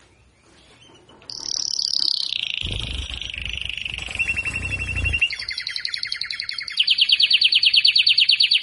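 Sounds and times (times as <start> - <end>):
Belgian canary male singing to stimulate a female: 0.0 - 8.6.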